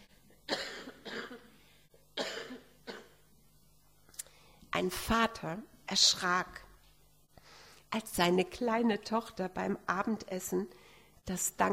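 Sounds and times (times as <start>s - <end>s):
sharp harsh coughs: 0.5s - 1.6s, 2.2s - 3.3s
speech: 4.8s - 6.6s, 7.9s - 11.7s.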